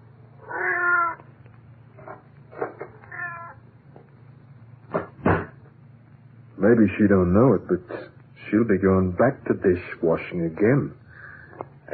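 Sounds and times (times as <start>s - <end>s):
low steady hum: 0.0s - 11.9s
cat meowing: 0.4s - 1.2s, 2.0s - 3.6s
sharp knocks: 4.9s - 5.6s
speech: 6.6s - 11.0s.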